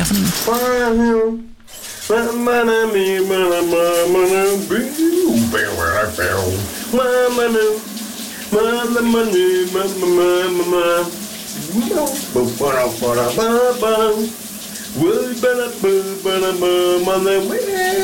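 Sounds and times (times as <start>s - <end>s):
speech: 0.1s - 7.9s, 8.5s - 18.0s
man singing a melody loudly: 0.4s - 11.2s, 12.3s - 18.0s
shower water hissing: 1.6s - 18.0s.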